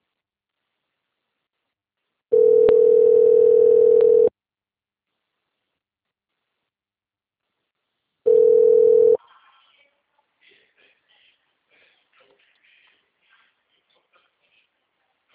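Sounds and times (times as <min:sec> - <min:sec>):
ringback tone of an outgoing telephone call: 0:02.3 - 0:04.3, 0:08.3 - 0:09.2.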